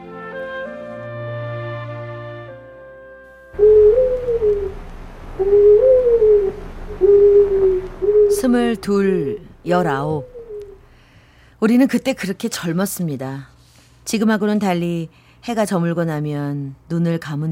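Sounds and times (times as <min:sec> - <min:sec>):
soft sustained musical tones: 0:00.0 - 0:10.9
young man imitating owl hoots at night in front of a house: 0:03.6 - 0:04.8, 0:05.4 - 0:10.8
speech: 0:08.4 - 0:10.3, 0:11.6 - 0:13.5, 0:14.1 - 0:17.5.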